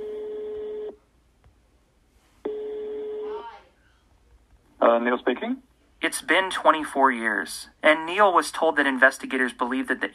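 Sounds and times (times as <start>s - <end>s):
long steady electronic telephone tones while dialing a long phone number: 0.1s - 1.0s
speech: 4.9s - 10.1s.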